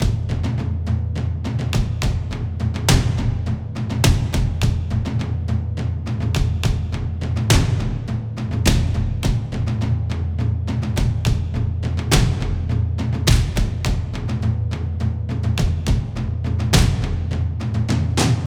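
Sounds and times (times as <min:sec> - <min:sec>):
cinematic trailer drum ensemble loop: 0:00.0 - 0:18.4.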